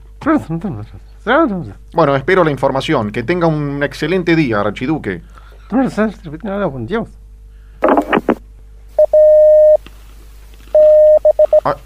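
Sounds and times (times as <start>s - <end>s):
speech: 0.2s - 7.2s, 11.6s - 11.8s
Morse code telegraph beeps in a single-pitched tone: 9.0s - 9.8s, 10.8s - 11.7s.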